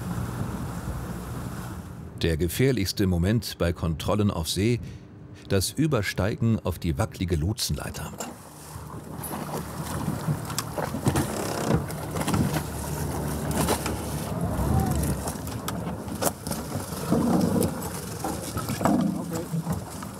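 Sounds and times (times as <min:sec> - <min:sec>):
inflatable boat engine droning at sea: 0:00.0 - 0:02.2, 0:04.5 - 0:20.1
speech: 0:02.2 - 0:08.3
rushing water at open sea: 0:08.4 - 0:20.1
heavy wind buffeting at sea: 0:13.3 - 0:16.1.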